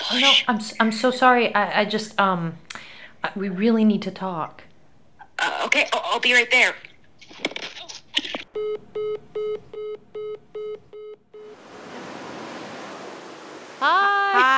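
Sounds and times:
speech: 0.1 - 4.7, 5.4 - 7.5, 13.8 - 14.5
ocean waves washing ashore: 11.4 - 14.3.

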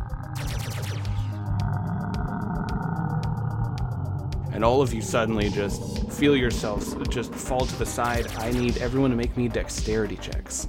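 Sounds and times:
deep rumbling giant monster roar: 0.0 - 0.5, 1.3 - 9.3
rapid steady train of sharp ticking blasts: 0.2 - 9.3
speech: 4.6 - 10.6.

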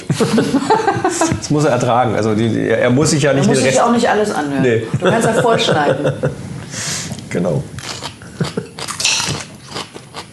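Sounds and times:
laughter: 0.0 - 1.5, 4.6 - 6.4
speech: 0.2 - 7.8
crunchy chewing of raw radishes: 7.8 - 10.3.

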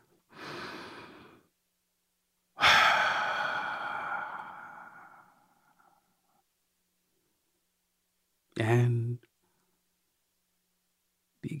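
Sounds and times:
deep breath: 0.3 - 1.5, 2.6 - 6.3.

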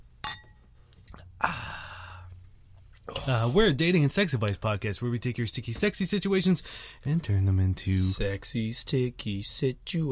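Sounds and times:
glasses of bubbly drinks clinking in a toast: 0.2 - 0.6
soft breathy hiss: 0.8 - 3.7, 6.5 - 7.1
speech: 3.2 - 10.1.

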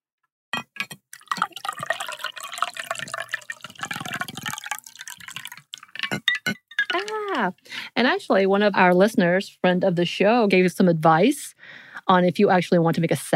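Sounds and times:
drink pouring into a glass: 1.1 - 7.2
glass clinks: 6.0 - 7.1
speech: 7.1 - 13.3.

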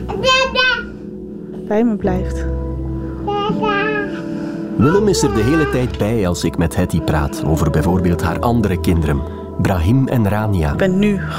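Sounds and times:
one-year-old boy babbling and squealing: 0.1 - 1.0, 3.3 - 4.2, 4.8 - 6.1, 6.7 - 8.6
speech: 1.7 - 2.5, 4.8 - 11.3.

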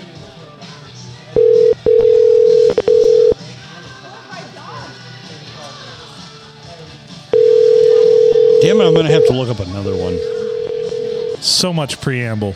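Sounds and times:
telephone ringing tone on an unanswered call: 1.4 - 3.4, 7.4 - 11.4
speech: 9.0 - 10.4, 11.4 - 12.5.

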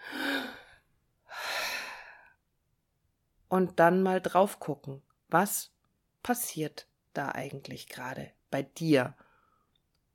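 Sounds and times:
deep breath in and out: 0.0 - 2.4
speech: 3.5 - 9.2.

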